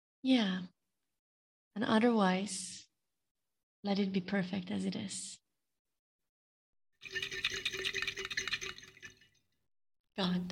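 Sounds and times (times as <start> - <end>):
speech: 0.2 - 0.7, 1.8 - 2.8, 3.8 - 5.4, 7.0 - 7.4, 10.2 - 10.5
water splashing and bubbling: 7.0 - 9.4.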